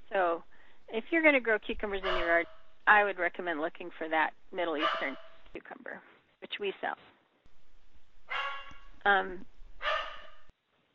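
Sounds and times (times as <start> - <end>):
speech: 1.1 - 7.1, 9.0 - 9.5
dog barking: 2.0 - 2.4, 4.8 - 5.2, 8.3 - 8.8, 9.8 - 10.4.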